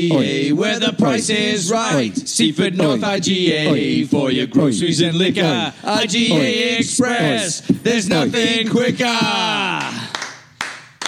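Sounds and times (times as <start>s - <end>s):
speech: 0.0s - 10.0s
hand claps recorded in a lounge room: 8.4s - 11.0s.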